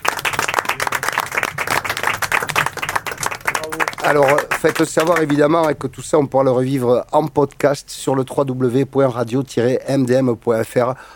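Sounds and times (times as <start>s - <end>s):
group of people applauding: 0.0s - 5.8s
speech: 4.0s - 11.1s.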